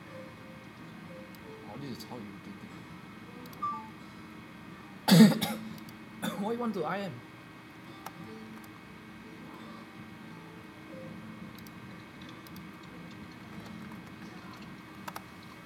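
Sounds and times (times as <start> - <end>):
steady hum: 0.0 - 15.6
speech: 1.8 - 2.9, 6.4 - 7.3
typing on a computer keyboard during a call: 11.6 - 15.3.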